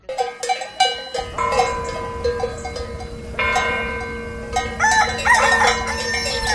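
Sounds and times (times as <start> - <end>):
rural village noise: 0.0 - 6.5
constant low hum: 1.1 - 6.5
rooster crowing in a rural village: 4.6 - 6.5.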